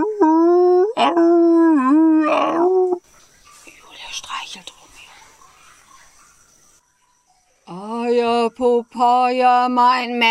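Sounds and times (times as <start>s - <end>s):
dog whimpering and howling: 0.0s - 3.0s
speech: 8.6s - 10.3s.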